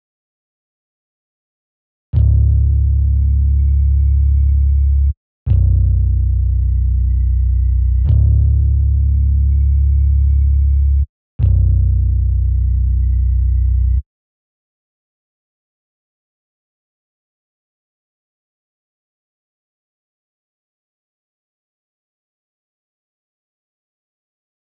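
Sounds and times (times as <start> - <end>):
162 BPM C sharp minor bass loop: 2.2 - 14.0.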